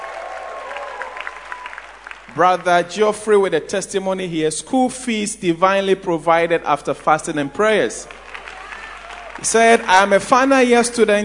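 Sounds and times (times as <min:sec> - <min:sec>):
audience clapping in praise: 0:00.0 - 0:03.0, 0:06.8 - 0:10.2
speech: 0:02.3 - 0:08.2, 0:09.4 - 0:11.2.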